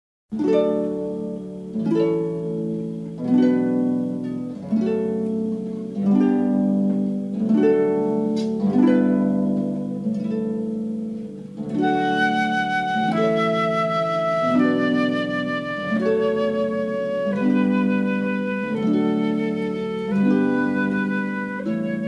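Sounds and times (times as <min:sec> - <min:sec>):
harp in a trio: 0:00.3 - 0:22.0
flute in a trio: 0:11.6 - 0:22.0.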